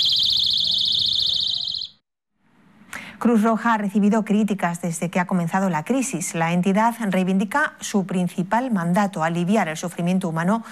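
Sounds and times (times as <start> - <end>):
personal safety keychain alarm shrieking with a high-pitched electronic tone: 0.0 - 2.0
speech: 3.2 - 10.7.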